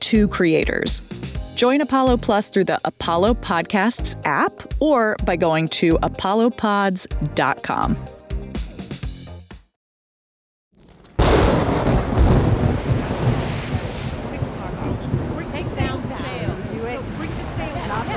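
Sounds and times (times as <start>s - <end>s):
speech: 0.1s - 8.2s
gusting wind: 11.2s - 18.1s
rough stormy sea with crashing surf: 11.2s - 18.1s.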